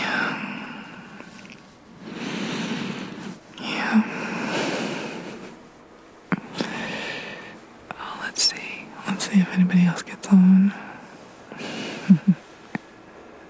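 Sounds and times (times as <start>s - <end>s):
heavy breathing: 0.0s - 5.7s, 6.4s - 7.7s, 10.6s - 12.7s.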